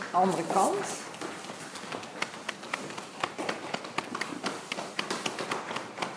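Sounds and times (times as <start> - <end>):
speech: 0.1 - 1.1
hands slapping and patting the body: 1.9 - 6.1.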